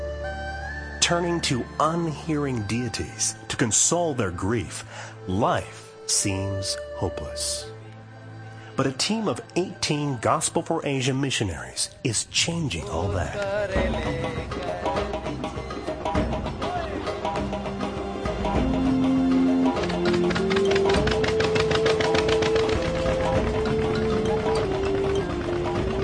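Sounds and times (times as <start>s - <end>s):
speech: 1.1s - 7.8s, 8.8s - 15.5s
boat motor droning with a rhythmic knocking pulse on waterways: 14.0s - 26.0s.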